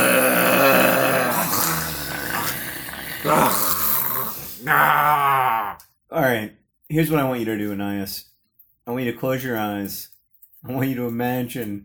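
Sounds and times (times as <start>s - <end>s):
voice letting out guttural snore-like growl while trying to scream: 0.0s - 5.8s
speech: 6.9s - 11.8s.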